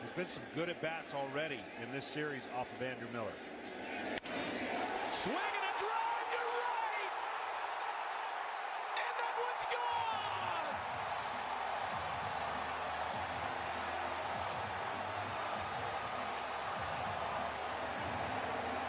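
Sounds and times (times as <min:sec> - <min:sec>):
huge stadium crowd cheering: 0:00.0 - 0:18.8
speech: 0:00.2 - 0:03.6, 0:05.2 - 0:05.5
people whooping: 0:05.2 - 0:18.8.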